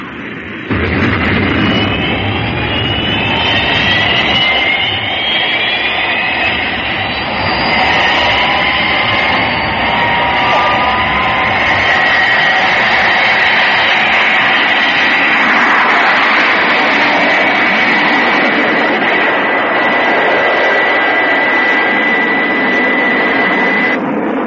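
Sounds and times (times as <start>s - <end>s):
jet aircraft taking off at full power: 0.0s - 24.4s
high whining jet engine tones: 0.1s - 24.2s.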